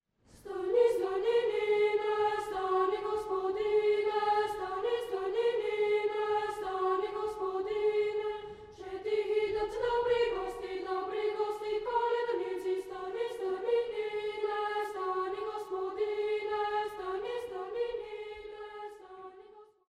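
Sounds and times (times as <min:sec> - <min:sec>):
boys' choir singing Bulgarian folk Christmas songs: 0:00.4 - 0:19.6.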